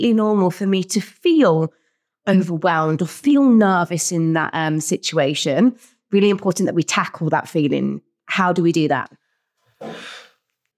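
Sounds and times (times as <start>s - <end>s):
speech: 0.0s - 9.2s
deep deliberate breath drawn in audibly close to the mic: 9.3s - 10.5s.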